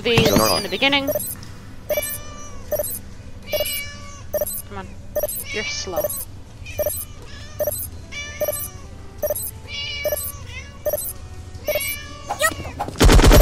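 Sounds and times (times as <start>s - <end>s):
speech: 0.0s - 1.3s, 5.6s - 6.2s
short cat meows from a video game: 0.4s - 4.6s, 5.2s - 6.2s, 6.8s - 11.1s, 11.7s - 13.3s.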